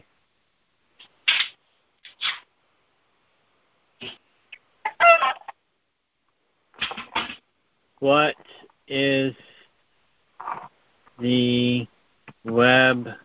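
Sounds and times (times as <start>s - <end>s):
rooster crowing and clucking: 4.8s - 5.6s
speech: 8.0s - 9.5s, 11.2s - 13.2s.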